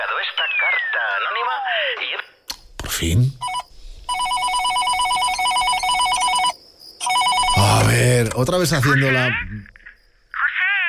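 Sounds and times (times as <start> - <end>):
speech: 0.2 - 3.5, 8.0 - 9.7
electronic telephone ring with warbling trill: 3.4 - 8.1.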